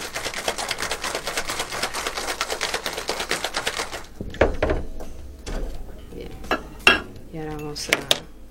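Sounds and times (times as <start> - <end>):
cocktail shaker packed with ice being shaken hard: 0.0 - 4.1
heavier knocks of cocktail shaker: 4.2 - 7.1
speech: 7.8 - 8.2.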